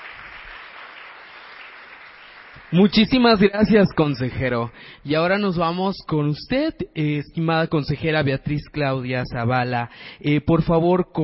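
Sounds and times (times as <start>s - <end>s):
audience applause: 0.0s - 3.4s
speech: 2.6s - 11.2s.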